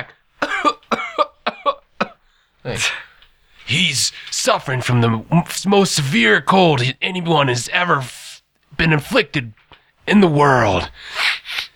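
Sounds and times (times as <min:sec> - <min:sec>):
person coughing: 0:00.4 - 0:03.0
speech: 0:02.7 - 0:03.0, 0:03.7 - 0:08.2, 0:08.8 - 0:11.2.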